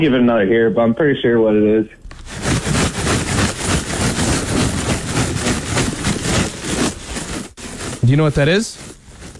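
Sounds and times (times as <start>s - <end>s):
speech: 0.0s - 2.0s, 8.0s - 8.9s
bag of sunflower seeds shaken: 2.1s - 9.3s.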